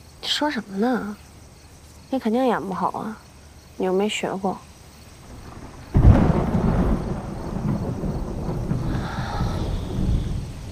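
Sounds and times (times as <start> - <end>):
faint hiss of wind or rain: 0.0 - 10.6
speech: 0.3 - 1.3, 2.1 - 3.2, 3.8 - 4.7
thunder crack rolling into long deep rumble before rain: 5.2 - 10.6.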